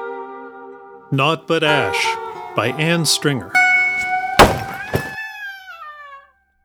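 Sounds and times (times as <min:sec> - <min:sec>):
speech: 0:01.1 - 0:03.6
gallows trapdoor banging open with heavy thuds: 0:03.9 - 0:05.3.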